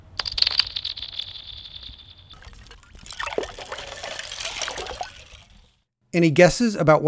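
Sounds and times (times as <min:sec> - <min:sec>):
small pebbles bouncing on a frozen pond: 0:00.0 - 0:05.6
frozen pond ice breaking and sinking: 0:02.4 - 0:05.7
speech: 0:06.1 - 0:07.0.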